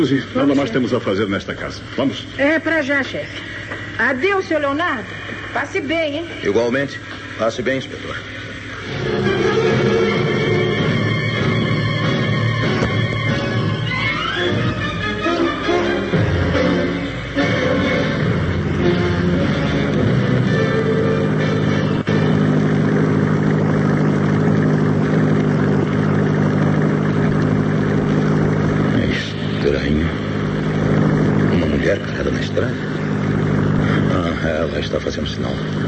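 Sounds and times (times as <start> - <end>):
speech: 0.0 - 9.5
car engine running: 0.0 - 35.8.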